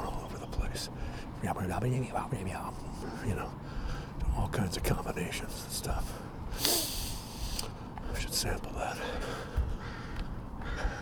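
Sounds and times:
steady hum of open air: 0:00.0 - 0:10.9
speech: 0:00.8 - 0:03.8, 0:04.4 - 0:06.7, 0:08.2 - 0:09.6
crows cawing outdoors: 0:09.2 - 0:10.9.

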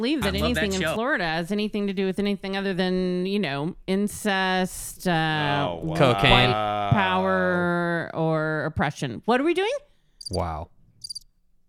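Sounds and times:
speech: 0:00.0 - 0:10.8
crickets chirping in a short bright trill: 0:11.0 - 0:11.2.

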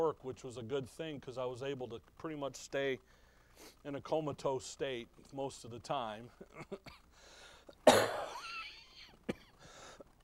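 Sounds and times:
speech: 0:00.1 - 0:08.4
person with flu clearing throat: 0:07.8 - 0:09.6
person with flu coughing: 0:07.8 - 0:09.6.

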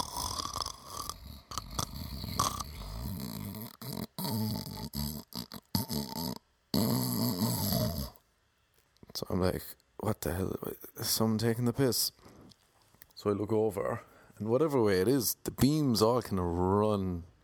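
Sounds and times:
person imitating heavy snoring: 0:00.0 - 0:08.2
speech: 0:09.2 - 0:12.2, 0:13.2 - 0:17.3.

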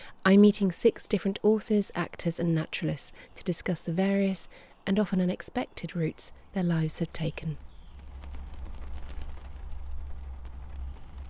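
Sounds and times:
speech: 0:00.2 - 0:07.6
steady rain: 0:06.3 - 0:11.2
low rumble: 0:07.4 - 0:11.2.

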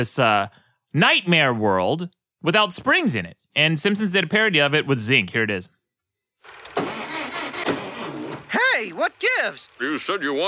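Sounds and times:
speech: 0:00.0 - 0:05.8, 0:08.9 - 0:10.4
car engine cranking and failing to start with no battery: 0:06.4 - 0:08.6.

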